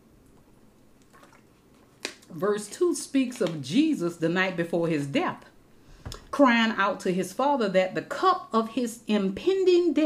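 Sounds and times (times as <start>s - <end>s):
quiet room hum: 0.0s - 10.0s
soft sip of water: 0.2s - 2.4s
small swallow: 1.0s - 1.6s
speech: 2.3s - 5.5s, 6.4s - 10.0s.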